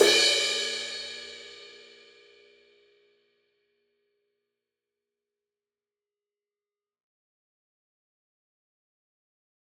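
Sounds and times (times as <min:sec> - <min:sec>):
crash cymbal one shot: 0:00.0 - 0:01.9.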